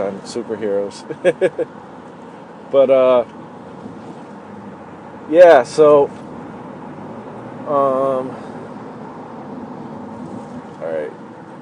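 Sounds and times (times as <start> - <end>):
road traffic rumble: 0.0 - 11.5
speech: 0.1 - 2.0, 2.7 - 3.4, 5.3 - 6.2, 7.7 - 8.4
laughter: 1.1 - 1.7.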